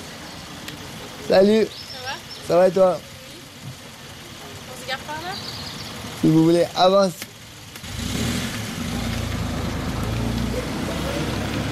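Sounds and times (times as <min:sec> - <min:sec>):
speech: 0:01.3 - 0:01.8, 0:02.5 - 0:03.1, 0:06.2 - 0:07.3
car driving past: 0:07.8 - 0:11.6.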